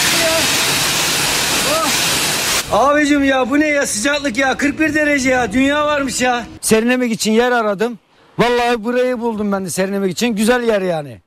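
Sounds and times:
pressurized water spraying at a car wash: 0.0 - 2.7
speech: 2.7 - 11.2.

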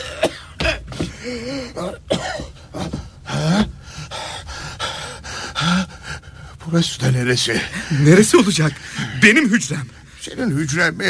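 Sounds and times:
person coughing: 0.0 - 3.0
throat clearing: 0.0 - 3.0
speech: 1.3 - 3.7, 6.7 - 11.0.

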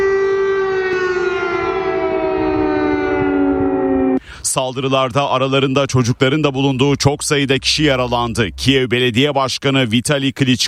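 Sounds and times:
air raid sirens wailing over Kyiv during a missile and drone attack: 0.0 - 4.2
speech: 4.5 - 10.6.

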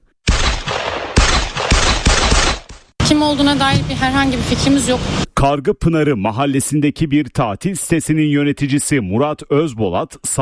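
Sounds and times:
gunshots fired inside a room: 0.2 - 3.0
speech: 3.1 - 10.3.

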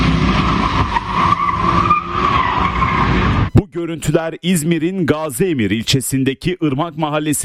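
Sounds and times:
car tires screeching as cars drift on a residential street: 0.0 - 3.5
car engine roar: 0.0 - 3.6
speech: 3.8 - 7.4.

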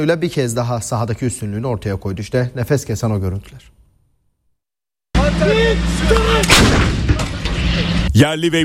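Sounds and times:
speech: 0.0 - 3.8, 5.4 - 6.4, 8.2 - 8.6
artillery and howitzer fire during a military exercise: 6.4 - 7.4.

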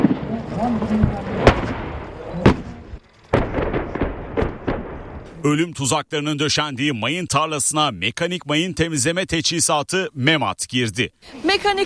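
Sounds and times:
naval guns on corvettes firing at targets: 0.0 - 5.3
dense continuous rumble: 0.0 - 9.5
speech: 0.7 - 1.2, 5.4 - 11.8.

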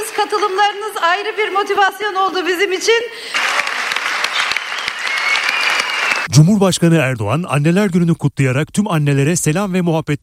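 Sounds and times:
speech: 0.2 - 3.7, 6.4 - 10.2
hall audience applauding a political speech: 3.3 - 6.3.

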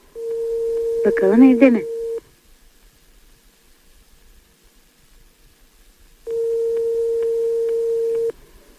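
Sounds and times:
faint phone line hiss: 0.0 - 8.7
electronic phone ringback tone: 0.2 - 2.2, 6.3 - 8.3
speech: 1.0 - 1.9.

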